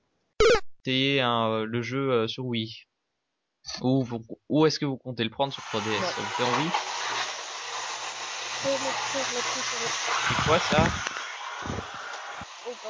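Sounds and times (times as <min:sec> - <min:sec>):
speech: 0:00.8 - 0:02.9, 0:03.6 - 0:06.9, 0:08.6 - 0:11.8
vacuum cleaner running in another room: 0:05.4 - 0:12.8.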